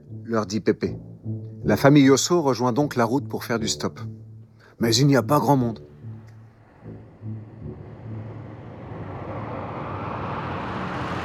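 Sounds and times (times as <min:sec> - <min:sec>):
speech: 0:00.3 - 0:04.2, 0:04.8 - 0:05.9
large convertible Cadillac engine rumble driving up and stopping: 0:04.1 - 0:11.2
rushing road noise: 0:04.5 - 0:11.2.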